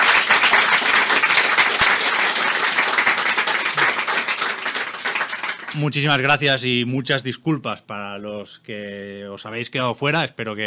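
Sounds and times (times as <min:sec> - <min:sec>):
audience applauding: 0:00.0 - 0:06.3
speech: 0:05.8 - 0:10.6.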